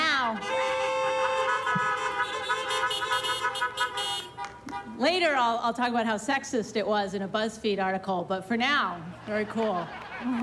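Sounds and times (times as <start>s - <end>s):
car horns honking: 0.0s - 5.1s
speech: 5.0s - 10.4s.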